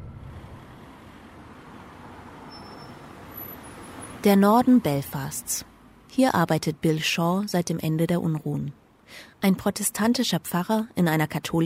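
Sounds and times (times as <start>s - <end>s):
bus engine rumble on a country road: 0.0s - 5.6s
road noise: 0.0s - 9.2s
speech: 4.2s - 11.6s.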